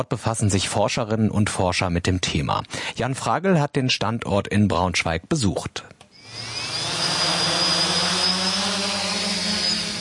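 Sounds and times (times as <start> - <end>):
speech: 0.0 - 6.5
drones lifting off with high-pitched whirring rotors: 6.2 - 9.9.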